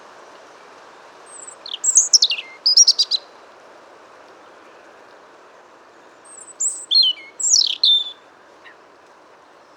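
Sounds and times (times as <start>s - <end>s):
soft steady hiss: 0.0s - 9.7s
European robin singing: 1.4s - 3.2s, 6.3s - 8.2s.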